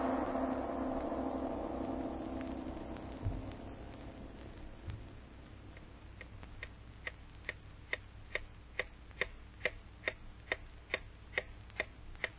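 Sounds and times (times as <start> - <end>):
soft low hum: 0.0 - 12.3
clock ticking: 5.8 - 12.3.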